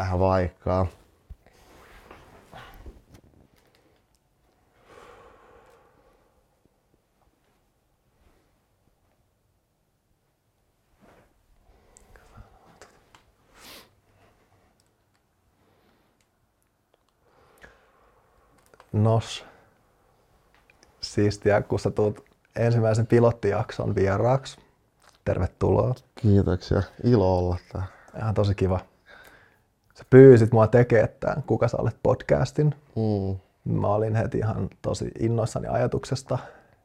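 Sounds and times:
speech: 0:00.0 - 0:01.0, 0:18.9 - 0:19.5, 0:21.2 - 0:24.6, 0:25.3 - 0:28.9, 0:30.0 - 0:36.6
slow deep breaths as a breathing exercise: 0:01.4 - 0:06.9, 0:11.6 - 0:14.8, 0:17.2 - 0:18.7, 0:29.0 - 0:29.8, 0:36.4 - 0:36.8.

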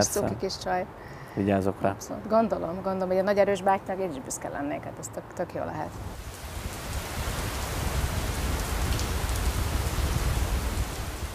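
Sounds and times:
speech: 0:00.0 - 0:06.3
steady rain falling outside: 0:05.9 - 0:11.3.

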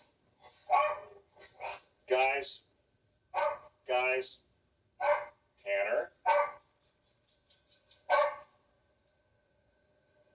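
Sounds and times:
dogs barking at home: 0:00.4 - 0:01.8, 0:03.3 - 0:03.8, 0:05.0 - 0:05.4, 0:06.1 - 0:06.8, 0:08.0 - 0:08.6
speech: 0:02.4 - 0:02.7, 0:04.2 - 0:04.4.

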